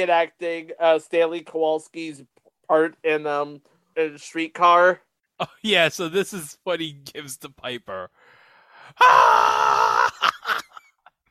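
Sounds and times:
speech: 0.0 - 8.2, 8.9 - 10.6
man gasping and groaning as his breath gives out: 8.2 - 10.2
man screaming: 9.0 - 10.7.

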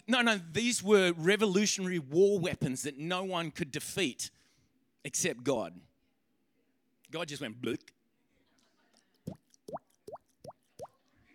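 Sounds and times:
speech: 0.1 - 4.4, 5.0 - 5.9, 7.1 - 8.0
hollow bubble plops: 9.3 - 11.0.

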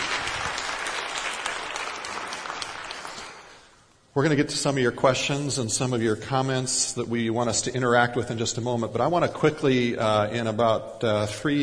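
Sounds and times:
crowd applauding: 0.0 - 3.8
speech: 4.2 - 11.6.

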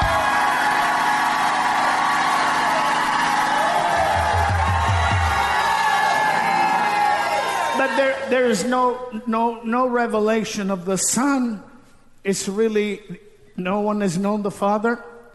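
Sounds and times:
large audience shouting and cheering: 0.0 - 8.4
speech: 8.0 - 15.1.

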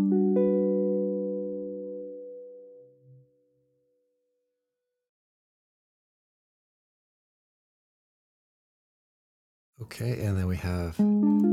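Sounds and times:
G-flat major seventh chord on the middle four strings at the 10th position: 0.0 - 3.4, 11.0 - 11.5
speech: 9.8 - 11.5.

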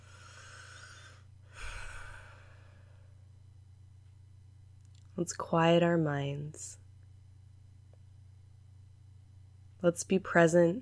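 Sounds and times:
slow deep human breath: 0.0 - 3.2
faint low hum: 0.0 - 10.8
speech: 5.2 - 6.8, 9.8 - 10.8.

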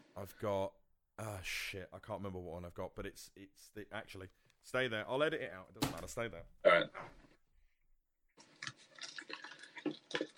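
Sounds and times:
speech: 0.2 - 7.2
drink pouring into a glass: 8.4 - 10.3.

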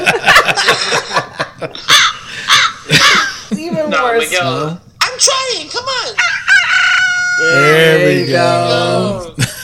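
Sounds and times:
laughter: 0.0 - 3.9, 9.1 - 9.6
speech: 4.0 - 6.4, 7.4 - 9.5
human voice imitating a rooster crow: 6.3 - 8.0.

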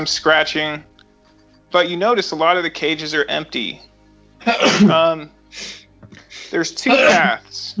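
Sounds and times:
speech: 0.0 - 0.9, 1.7 - 5.8, 6.5 - 7.7
sneeze: 4.6 - 5.0, 6.9 - 7.7.

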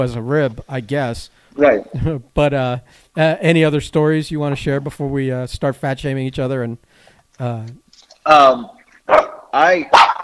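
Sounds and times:
speech: 0.0 - 10.0
dog barking: 9.1 - 10.2.

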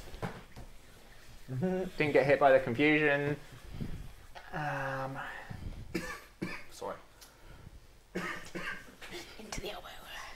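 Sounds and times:
speech: 1.5 - 3.6, 4.6 - 5.4
muffled cough into an elbow: 5.9 - 6.7, 8.2 - 9.0.

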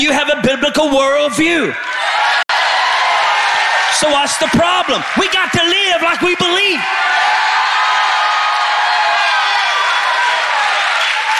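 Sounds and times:
speech: 0.0 - 2.3, 4.0 - 7.4
large audience shouting and cheering: 1.1 - 11.3
scattered clapping: 3.4 - 6.9, 8.4 - 11.3.

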